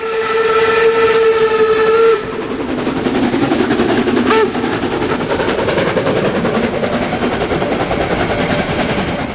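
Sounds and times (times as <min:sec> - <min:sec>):
steam locomotive whistle blowing a steady tone: 0:00.0 - 0:02.5, 0:04.2 - 0:04.7
steam locomotive chuffing uphill: 0:00.0 - 0:09.3.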